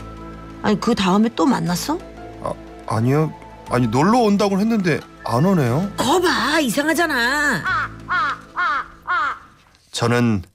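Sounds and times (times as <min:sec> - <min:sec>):
speech: 0:00.6 - 0:07.8, 0:10.0 - 0:10.5
crow cawing: 0:07.4 - 0:09.7.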